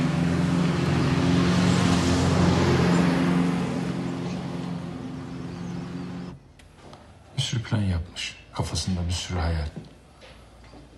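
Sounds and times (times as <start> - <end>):
old red car engine humming on a winding downhill asphalt road: 0.0 - 6.5
broadband road noise on asphalt: 0.0 - 10.9
speech: 7.7 - 10.0.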